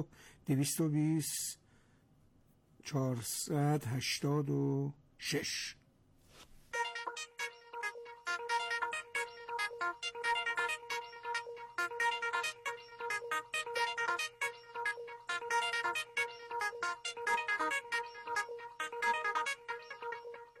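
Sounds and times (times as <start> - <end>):
speech: 0.0 - 1.6, 2.8 - 5.8
bright bouncy jingle with plucked notes over a sustained tone: 6.8 - 20.2.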